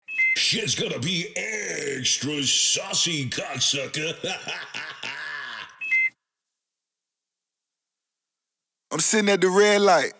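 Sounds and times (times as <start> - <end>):
laughter: 0.4 - 6.1
speech: 0.5 - 4.9, 9.0 - 10.1
person groaning: 1.3 - 5.8
ankle monitor low-battery beep: 5.8 - 6.2.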